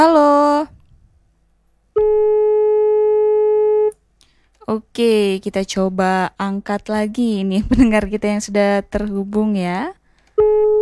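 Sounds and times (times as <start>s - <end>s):
phone busy tone after a call disconnects: 2.0s - 4.0s, 10.4s - 10.7s
speech: 4.7s - 10.7s.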